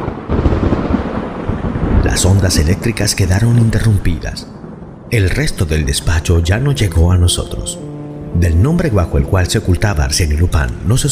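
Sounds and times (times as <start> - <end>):
loud thunderclap with rumbling roar: 0.0 - 7.6
speech: 2.1 - 4.5, 5.1 - 11.1.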